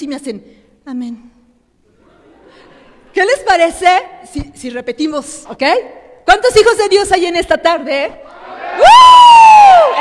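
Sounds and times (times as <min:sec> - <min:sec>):
speech: 0:00.0 - 0:01.4, 0:02.5 - 0:08.9
audience cheering and applauding: 0:08.3 - 0:09.9.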